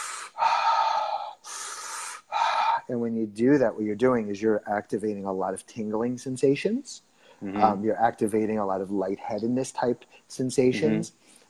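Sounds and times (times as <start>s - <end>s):
person demonstrating circular connected breathing from breath work: 0.0s - 2.9s
speech: 2.9s - 11.4s.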